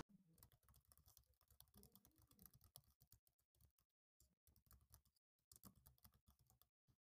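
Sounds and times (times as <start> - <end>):
typing on a computer keyboard: 0.0 - 7.1.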